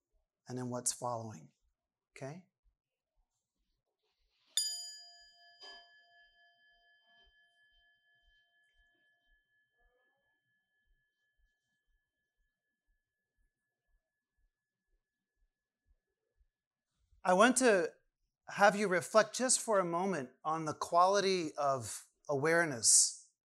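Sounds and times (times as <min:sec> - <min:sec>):
speech: 0:00.5 - 0:01.6, 0:02.2 - 0:02.5, 0:17.2 - 0:23.2
single bell struck and ringing: 0:04.6 - 0:06.0.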